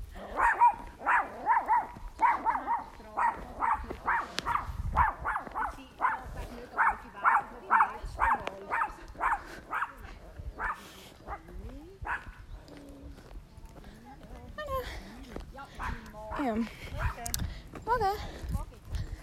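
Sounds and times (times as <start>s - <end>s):
voices: 0.0s - 19.2s
dog barking: 0.2s - 12.4s, 15.8s - 17.2s.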